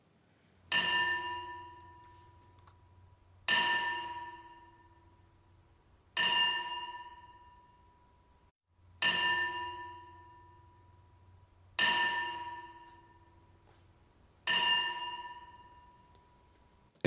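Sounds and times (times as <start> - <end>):
early medieval church bell tolling: 0.7 - 2.4, 3.5 - 5.2, 6.2 - 8.2, 9.0 - 13.5, 14.5 - 16.1.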